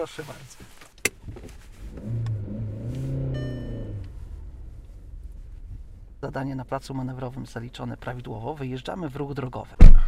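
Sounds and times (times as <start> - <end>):
speech: 0.0 - 1.4, 6.2 - 10.0
car engine revving and pulling away on a hill start: 1.2 - 8.4.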